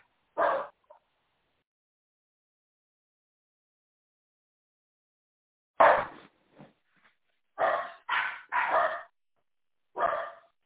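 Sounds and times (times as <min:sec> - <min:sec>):
dog barking: 0:00.4 - 0:01.0, 0:05.8 - 0:06.2, 0:07.6 - 0:09.1, 0:10.0 - 0:10.6.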